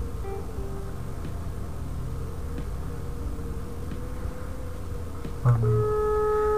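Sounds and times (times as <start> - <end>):
hiss: 0.0 - 6.5
electronic tone: 5.4 - 6.5.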